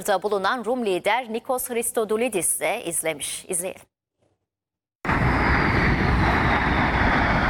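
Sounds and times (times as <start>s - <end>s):
speech: 0.0s - 3.9s
jet aircraft roaring overhead performing aerobatic manoeuvres above the pyramids in Egypt: 5.1s - 7.4s.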